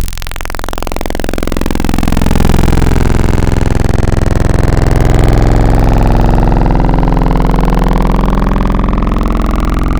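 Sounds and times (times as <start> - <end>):
synthesizer wavetable sound: 1.0 - 9.9.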